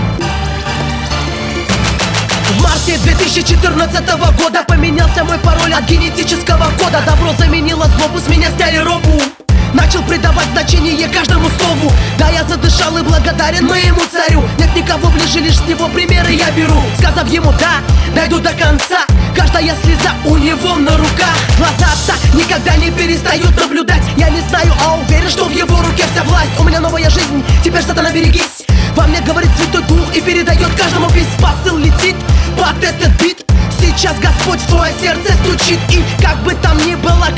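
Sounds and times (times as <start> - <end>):
rap music: 0.2 - 37.3.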